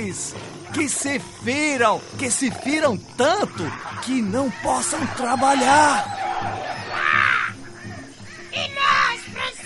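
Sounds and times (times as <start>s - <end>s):
speech: 0.2s - 6.7s
crow cawing: 3.6s - 9.6s.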